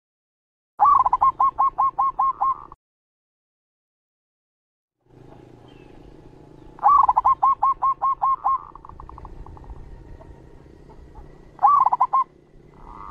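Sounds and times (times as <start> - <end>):
zebra dove master song: 0.8 - 2.8, 5.2 - 13.1.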